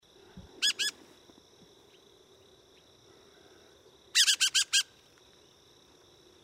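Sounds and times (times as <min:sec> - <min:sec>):
dusky thrush calling: 0:00.6 - 0:01.0, 0:04.1 - 0:05.0.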